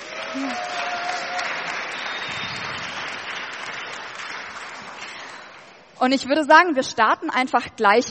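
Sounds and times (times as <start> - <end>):
audience applause: 0.0 - 5.8
speech: 0.4 - 0.8, 6.0 - 8.0
whistle-like tone: 1.9 - 2.8.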